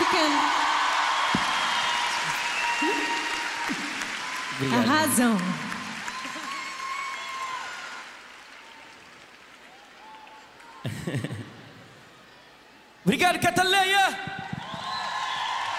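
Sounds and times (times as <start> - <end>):
audience applause: 0.0 - 11.4, 14.6 - 15.7
speech: 4.6 - 5.6, 10.8 - 11.4, 13.1 - 14.3.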